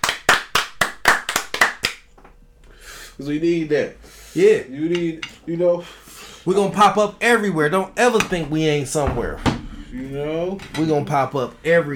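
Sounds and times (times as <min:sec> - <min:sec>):
hand claps: 0:00.0 - 0:02.4
speech: 0:03.2 - 0:11.9.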